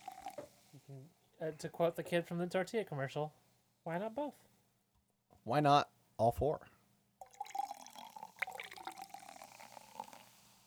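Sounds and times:
liquid pouring into a cup: 0:00.0 - 0:00.5, 0:07.2 - 0:10.6
speech: 0:00.9 - 0:04.5, 0:05.4 - 0:06.7.

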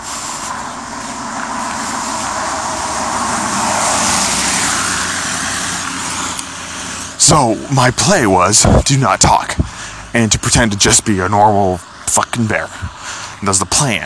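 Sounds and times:
steady low rumble: 0:00.0 - 0:10.2
car passing by: 0:00.0 - 0:11.1
speech: 0:07.3 - 0:14.0.

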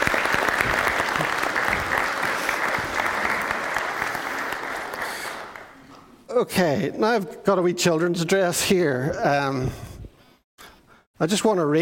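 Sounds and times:
roomful of people clapping: 0:00.0 - 0:05.9
speech: 0:06.4 - 0:09.9, 0:11.2 - 0:11.7.

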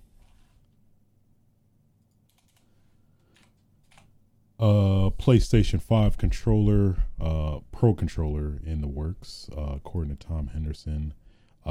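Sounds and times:
low steady hum: 0:00.0 - 0:11.6
clicky computer keyboard typing: 0:02.0 - 0:04.1
speech: 0:04.6 - 0:11.6.

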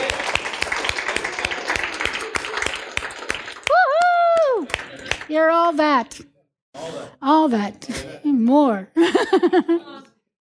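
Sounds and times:
crowd applauding: 0:00.0 - 0:05.3
speech: 0:05.4 - 0:09.9
laughter: 0:09.0 - 0:10.1.

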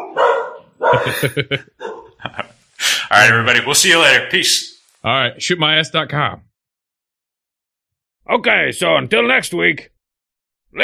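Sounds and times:
dog barking: 0:00.0 - 0:01.2, 0:01.8 - 0:02.2
laughter: 0:00.8 - 0:03.0
speech: 0:00.9 - 0:02.4, 0:03.1 - 0:06.5, 0:08.2 - 0:09.9.

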